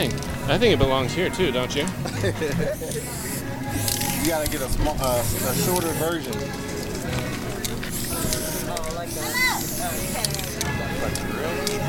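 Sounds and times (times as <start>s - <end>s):
murmuring voices and chatter: 0.0s - 11.8s
speech: 0.1s - 3.4s, 4.2s - 7.2s, 11.0s - 11.8s
laughter: 1.9s - 3.2s
spray paint can hissing in short bursts: 2.7s - 6.3s, 7.7s - 10.7s.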